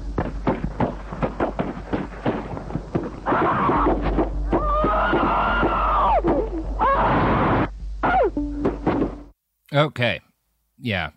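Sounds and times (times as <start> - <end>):
sharp thuds and clatter: 0.1 - 6.5, 8.6 - 9.2
anguished screaming from a played video through a speaker: 3.2 - 8.3
speech: 9.7 - 11.1.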